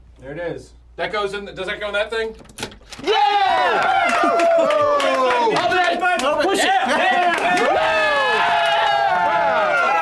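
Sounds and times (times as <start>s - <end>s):
speech: 0.2s - 8.5s
small group of people cheering and whooping: 3.0s - 9.9s.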